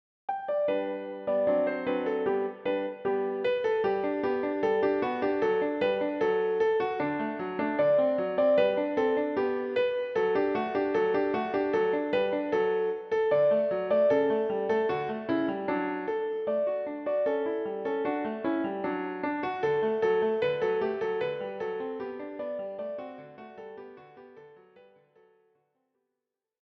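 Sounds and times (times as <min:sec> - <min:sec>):
piano piece: 0:00.3 - 0:25.5.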